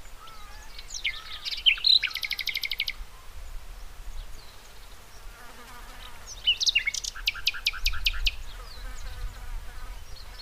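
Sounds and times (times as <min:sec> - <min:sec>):
Common nightingale Luscinia megarhynchos song with pulsed trill: 0:00.0 - 0:03.0, 0:06.0 - 0:10.4.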